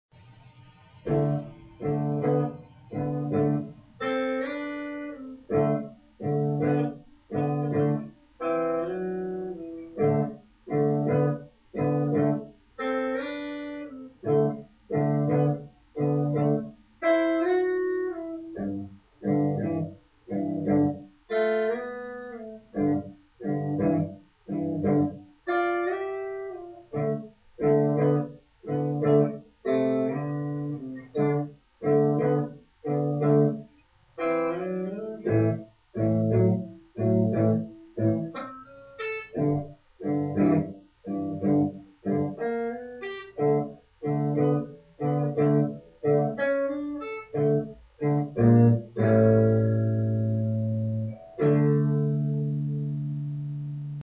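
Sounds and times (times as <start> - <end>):
guitar rhythm with fills: 0.2 - 54.0.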